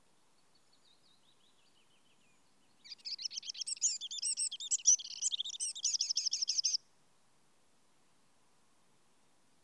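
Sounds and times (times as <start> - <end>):
Eurasian wren Troglodytes troglodytes song: 1.7 - 6.8.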